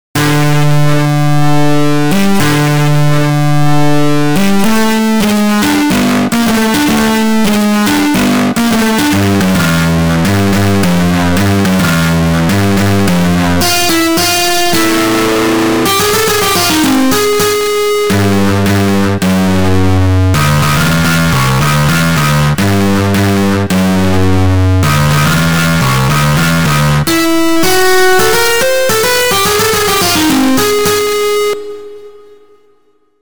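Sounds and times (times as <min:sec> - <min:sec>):
guitar with full overdrive: 0:00.2 - 0:33.0.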